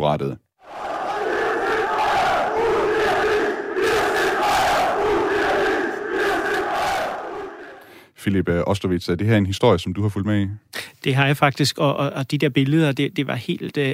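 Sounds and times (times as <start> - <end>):
speech: 0.0 - 0.4, 8.2 - 13.9
large crowd of angry football fans shouting and jeering at annual meeting: 0.7 - 7.8.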